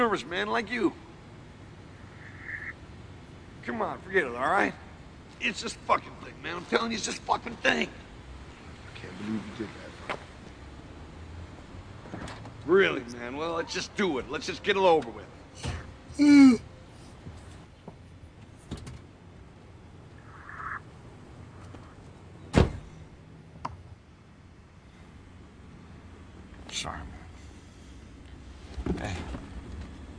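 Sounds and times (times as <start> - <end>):
speech: 0.0 - 1.1, 3.6 - 4.8, 5.4 - 8.0, 9.0 - 10.2, 12.7 - 16.7
low rumbling windy background: 0.0 - 30.1
car doors shutting: 22.4 - 22.9.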